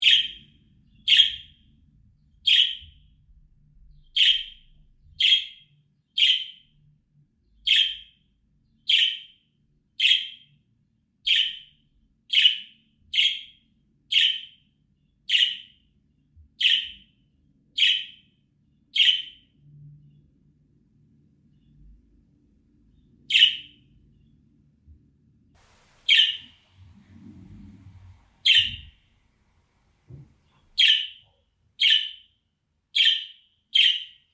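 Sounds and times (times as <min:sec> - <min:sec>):
budgerigar chirping: 0:00.0 - 0:01.6, 0:02.4 - 0:02.9, 0:04.1 - 0:04.6, 0:05.2 - 0:06.6, 0:07.6 - 0:08.2, 0:08.9 - 0:09.4, 0:10.0 - 0:10.5, 0:11.2 - 0:11.7, 0:12.3 - 0:14.6, 0:15.3 - 0:15.8, 0:16.6 - 0:17.0, 0:17.8 - 0:18.3, 0:18.9 - 0:19.4, 0:23.3 - 0:23.8, 0:26.0 - 0:26.6, 0:28.4 - 0:29.0, 0:30.8 - 0:32.3, 0:33.0 - 0:34.3.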